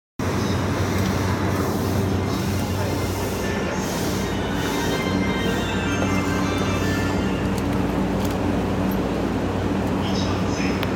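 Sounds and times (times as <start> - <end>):
Sobu Line rapid train in Tokyo: 0.2 - 10.9.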